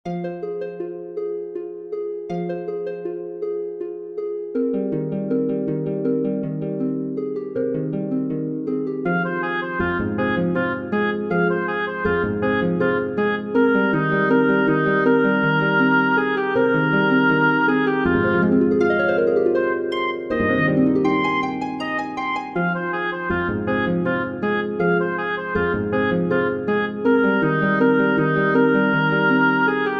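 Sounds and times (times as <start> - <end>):
harp: 0.0 - 29.9
oboe: 9.1 - 29.9.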